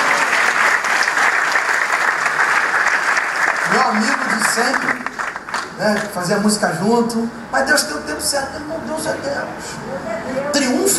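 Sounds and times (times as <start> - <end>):
church congregation applauding honoring a pastor: 0.0 - 6.4
speech: 3.9 - 5.1, 5.8 - 10.9.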